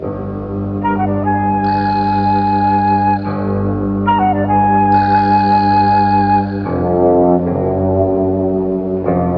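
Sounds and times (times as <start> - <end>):
sad strings: 0.1 - 9.2
sad flute: 0.8 - 7.8.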